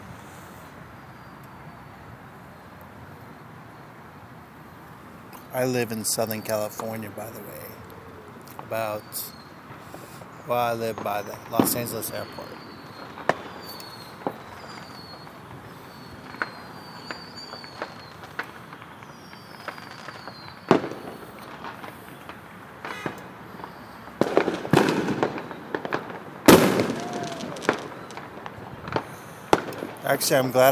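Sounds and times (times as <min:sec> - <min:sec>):
fireworks popping and crackling outside an apartment near Los Angeles airport: 0:05.3 - 0:07.8, 0:08.4 - 0:30.6
faint chirping: 0:05.4 - 0:21.2
speech: 0:05.5 - 0:07.9, 0:08.7 - 0:09.4, 0:10.4 - 0:12.6, 0:30.2 - 0:30.6.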